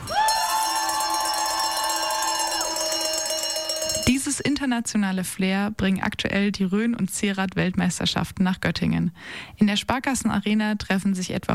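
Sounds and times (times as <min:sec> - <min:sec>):
crowd cheering and shouting: 0:00.0 - 0:04.0
cowbells clanging: 0:00.0 - 0:04.5
speech: 0:04.2 - 0:11.5.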